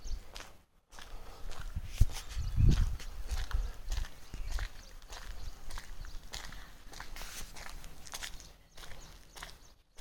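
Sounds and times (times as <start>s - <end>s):
footsteps crunching on a hill road surface: 0.0s - 9.9s
low rumble of wind on a breezy hill road: 1.2s - 7.0s.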